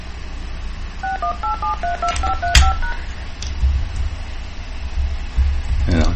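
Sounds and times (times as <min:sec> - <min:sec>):
low hum: 0:00.0 - 0:06.1
telephone keypad tones entering a meeting ID for a dial-in video meeting: 0:01.0 - 0:03.0.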